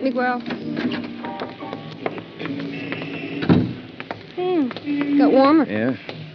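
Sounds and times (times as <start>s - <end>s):
speech: 0.0s - 1.4s, 4.6s - 6.1s
door opening and closing: 0.4s - 1.4s, 2.6s - 3.9s.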